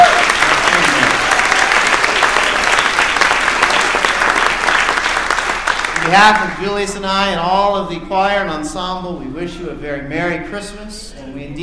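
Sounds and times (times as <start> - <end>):
large gathering applauding: 0.0 - 6.9
speech: 6.1 - 11.6.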